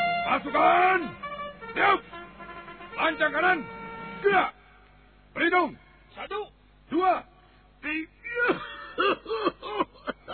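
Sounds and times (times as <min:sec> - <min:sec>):
speech: 0:00.3 - 0:01.2, 0:01.8 - 0:02.2, 0:03.0 - 0:04.6, 0:05.4 - 0:09.9
person coughing and hacking: 0:08.5 - 0:10.3.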